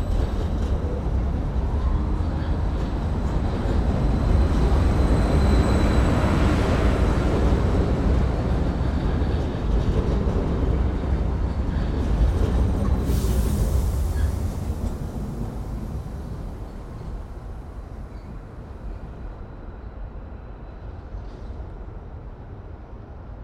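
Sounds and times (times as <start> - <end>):
train rumbling heavily: 0.0 - 23.4
sharp burst of air hiss: 13.0 - 16.0.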